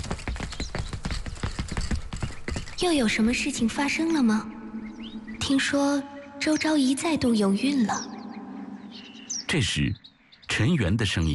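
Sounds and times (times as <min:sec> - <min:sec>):
quick small running footsteps in a palace corridor: 0:00.0 - 0:02.8
speech: 0:02.8 - 0:04.6, 0:05.5 - 0:08.1, 0:09.5 - 0:10.0, 0:10.6 - 0:11.3.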